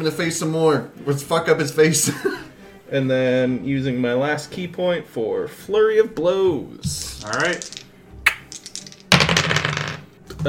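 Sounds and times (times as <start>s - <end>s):
speech: 0.0s - 7.8s
dice clattering across a hard table during a tabletop game: 6.9s - 10.4s.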